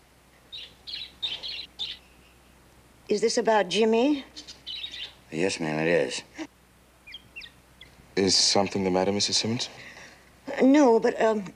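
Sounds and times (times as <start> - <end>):
pet bird chirping while being fed: 0.4 - 2.6, 4.0 - 5.9, 7.0 - 8.8
speech: 3.1 - 4.4, 5.3 - 6.4, 8.2 - 9.9, 10.6 - 11.5.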